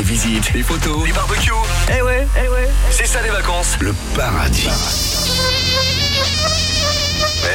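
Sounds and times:
speech: 0.2s - 6.6s
mosquito buzzing: 5.0s - 7.5s.

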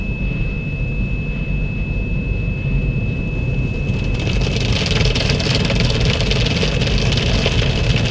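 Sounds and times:
thin steady high tone: 0.0s - 5.3s
car engine running in a car wash: 3.0s - 8.0s
car wash rollers rotating: 3.8s - 8.0s.

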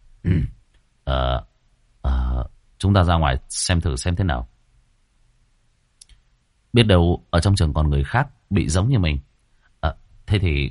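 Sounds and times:
man coughing dry coughs: 0.3s - 0.6s
speech: 2.8s - 4.5s, 6.8s - 10.6s.

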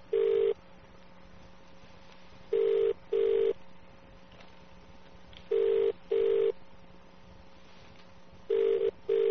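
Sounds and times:
British telephone ringback tone in double-ring pattern: 0.1s - 0.6s, 2.5s - 3.6s, 5.5s - 6.6s, 8.5s - 9.3s.

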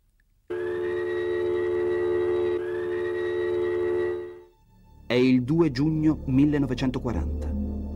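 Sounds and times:
air raid siren wailing during an alarm test in Italy: 0.5s - 4.5s
speech: 5.1s - 7.5s.

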